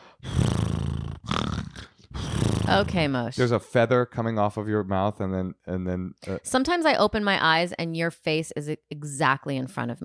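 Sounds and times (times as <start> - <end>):
voice imitating a cartoon character's snore with flapping buzzing lips: 0.2 - 3.2
speech: 2.7 - 10.0.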